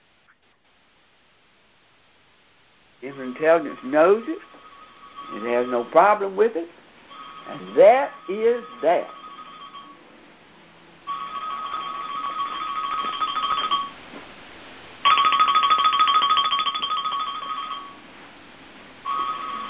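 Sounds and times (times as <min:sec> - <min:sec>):
speech: 0:03.0 - 0:04.6, 0:05.3 - 0:06.8, 0:07.5 - 0:09.2
phone playing a bright warbling electronic ringtone: 0:03.1 - 0:06.4, 0:07.1 - 0:10.1, 0:11.0 - 0:14.0, 0:15.0 - 0:18.0, 0:19.0 - 0:19.6.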